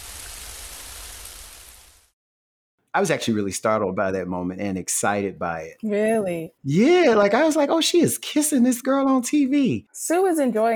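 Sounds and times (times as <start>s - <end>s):
steady dense rain pouring down: 0.0s - 2.1s
speech: 2.9s - 10.7s.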